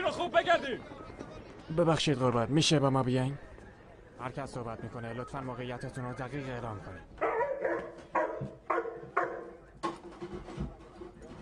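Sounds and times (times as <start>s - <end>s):
speech: 0.0s - 3.5s, 4.2s - 8.5s
dog barking: 7.2s - 9.6s.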